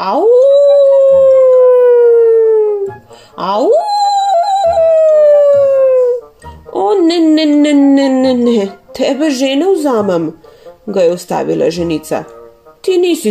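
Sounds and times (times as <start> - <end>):
speech: 0.0 - 0.4, 3.4 - 3.9, 6.9 - 13.3
person imitating a wolf howl: 0.0 - 8.7.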